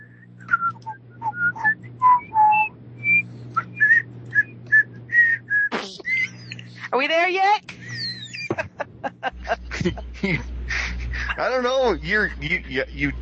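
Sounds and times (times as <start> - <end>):
person whistling a happy tune: 0.0 - 6.6
low hum: 0.0 - 13.2
laughter: 5.8 - 7.0, 7.7 - 13.2
speech: 6.9 - 7.8, 9.2 - 10.5, 11.4 - 13.2.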